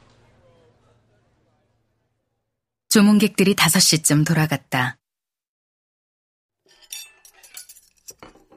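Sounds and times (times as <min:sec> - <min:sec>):
speech: 0:02.9 - 0:05.0
dishes and cutlery clinking while clearing a table: 0:06.7 - 0:08.5.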